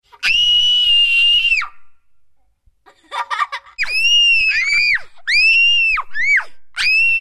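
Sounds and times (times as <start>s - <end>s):
children screaming shrilly: 0.2s - 1.7s, 3.8s - 7.1s
laughter: 2.9s - 3.8s.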